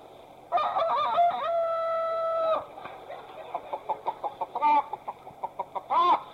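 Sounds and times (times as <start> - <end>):
chicken squawking: 0.8 - 6.3
chicken clucking: 2.5 - 6.3.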